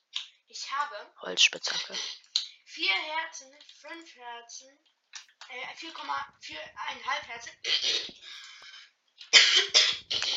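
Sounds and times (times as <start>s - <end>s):
speech: 0.6s - 4.9s, 5.5s - 8.4s
wheezy drawn breath: 8.1s - 9.0s
person coughing: 9.4s - 10.3s.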